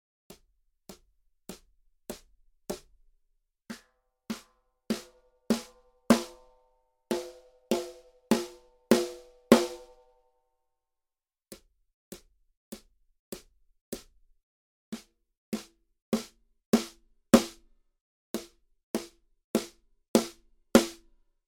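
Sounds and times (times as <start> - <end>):
snare drum played with birch rutes: 3.7 - 6.5, 7.1 - 10.0, 15.0 - 17.6, 18.4 - 21.1.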